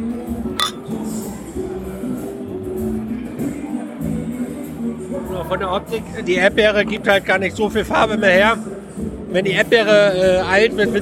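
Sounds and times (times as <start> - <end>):
soft voices murmuring: 0.0 - 11.0
glasses clinking in a toast: 0.6 - 1.0
light clattering of glass and tableware: 0.6 - 1.0
speech: 5.5 - 8.7, 9.3 - 11.0.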